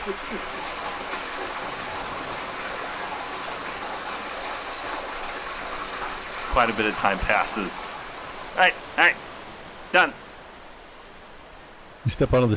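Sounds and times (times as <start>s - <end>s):
speech: 0.0s - 0.9s, 6.6s - 7.8s, 8.6s - 9.3s, 9.9s - 10.2s, 12.0s - 12.5s
steady stream of water pouring and splashing: 0.0s - 9.5s.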